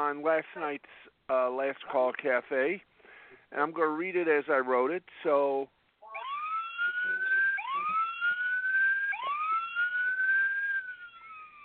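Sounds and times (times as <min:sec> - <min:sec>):
speech: 0:00.0 - 0:02.9, 0:03.5 - 0:05.8
police siren sound effect wailing in rising sweeps: 0:06.0 - 0:11.6.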